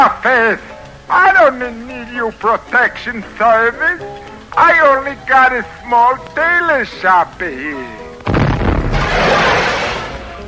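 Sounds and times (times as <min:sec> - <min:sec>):
speech: 0:00.0 - 0:08.4
explosion with deep booming blast and rumbling roar: 0:08.3 - 0:10.4.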